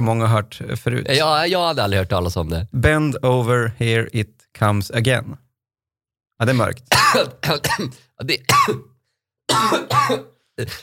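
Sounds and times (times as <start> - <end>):
speech: 0.0 - 5.4, 6.4 - 8.9, 9.5 - 10.8
person coughing: 6.5 - 10.8.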